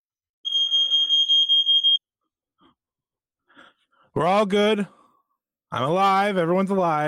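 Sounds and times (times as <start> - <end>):
smoke detector alarm beeping: 0.4 - 2.0
speech: 4.2 - 5.0, 5.7 - 7.0.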